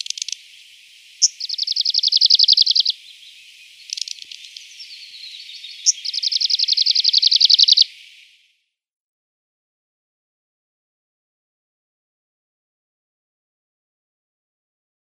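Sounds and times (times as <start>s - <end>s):
Arctic warbler singing fast buzzy trills with sharp call notes: 0.0s - 8.5s.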